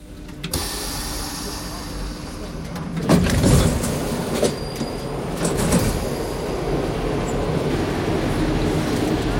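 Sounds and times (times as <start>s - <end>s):
metro train rumbling: 0.0s - 9.3s
metro train wheels squealing: 4.4s - 5.2s.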